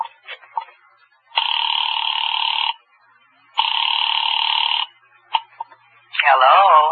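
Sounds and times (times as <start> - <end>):
telephone ringback tones after a number is dialed: 1.4 - 2.8, 3.6 - 5.0.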